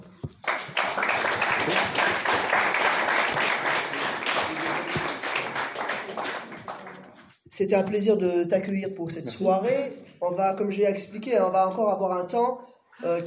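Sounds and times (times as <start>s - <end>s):
room full of people applauding: 0.0s - 7.3s
speech: 7.6s - 13.2s.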